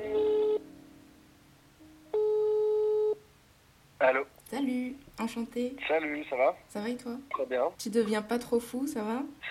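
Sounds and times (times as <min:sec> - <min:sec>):
telephone ringback tone heard down the line: 0:00.0 - 0:00.6, 0:02.1 - 0:03.2
speech: 0:04.0 - 0:09.4.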